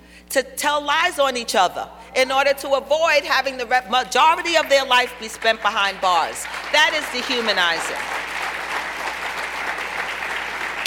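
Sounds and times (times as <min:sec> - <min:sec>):
speech: 0:00.3 - 0:08.2
audience applause at a talk on criminal justice: 0:05.9 - 0:10.8.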